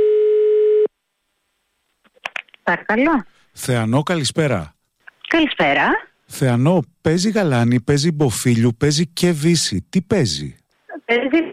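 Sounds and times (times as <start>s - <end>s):
telephone ringback tone for an outgoing call: 0.0s - 0.9s
speech: 2.7s - 11.4s.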